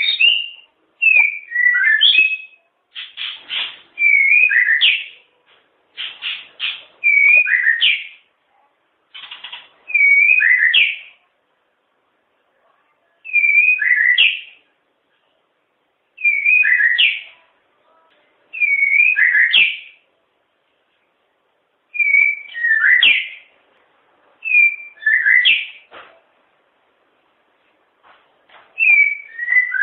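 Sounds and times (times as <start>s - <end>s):
White-rumped shama whistled song: 0.0s - 2.6s, 4.0s - 5.2s, 7.0s - 8.1s, 9.9s - 11.0s, 13.3s - 14.5s, 16.2s - 17.3s, 18.6s - 19.9s, 21.9s - 23.4s, 24.4s - 25.8s, 28.8s - 29.8s.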